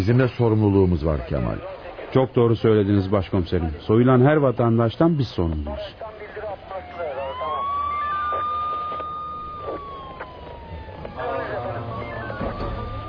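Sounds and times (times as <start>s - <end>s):
speech: 0.0s - 6.1s
steady noise: 0.0s - 13.0s
ambulance siren wailing on arrival: 6.1s - 13.0s.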